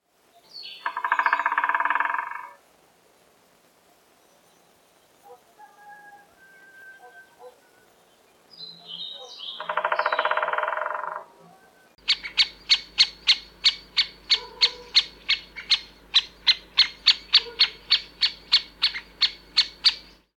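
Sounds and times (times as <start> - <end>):
great spotted woodpecker: 0.8 - 2.6, 9.5 - 11.2, 12.0 - 20.2.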